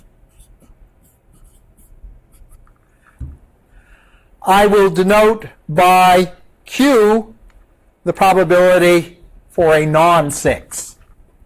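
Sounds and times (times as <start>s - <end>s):
writing on a board during a lecture on probability: 0.0s - 2.7s
soft low knock: 3.2s - 3.5s
speech: 4.4s - 7.3s, 8.0s - 10.9s.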